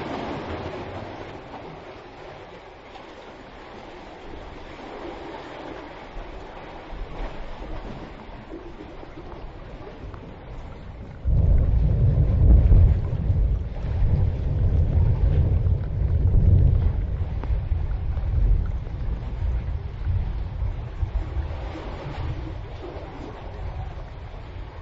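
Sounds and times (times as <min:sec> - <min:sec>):
rain pattering and dripping outdoors: 0:00.0 - 0:24.8
gusty wind roaring outdoors: 0:10.6 - 0:24.8.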